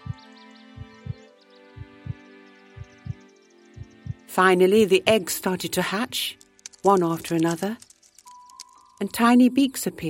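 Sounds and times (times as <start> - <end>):
soft sustained musical backdrop with faint twinkling tones: 0.0 - 10.0
slow heartbeat in double beats: 0.8 - 1.2, 1.8 - 2.2, 2.8 - 3.2, 3.8 - 4.3
speech: 4.4 - 7.8, 9.0 - 10.0.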